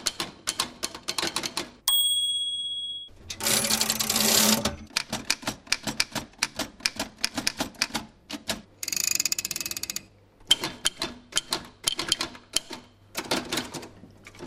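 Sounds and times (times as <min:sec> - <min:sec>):
early antique typewriters clattering in a typewriter museum: 0:00.0 - 0:01.8, 0:03.3 - 0:08.6, 0:10.5 - 0:14.4
bright antique typewriter bell ding: 0:01.9 - 0:04.6
harsh rasping mechanical passages of antique typewriters: 0:03.4 - 0:04.9.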